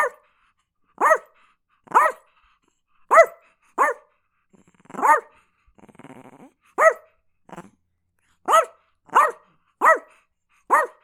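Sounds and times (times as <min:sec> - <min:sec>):
Chihuahua barking in sharp high yaps: 0:01.0 - 0:01.2, 0:03.1 - 0:04.0, 0:05.0 - 0:05.3, 0:06.8 - 0:07.0, 0:08.5 - 0:10.1, 0:10.7 - 0:11.0.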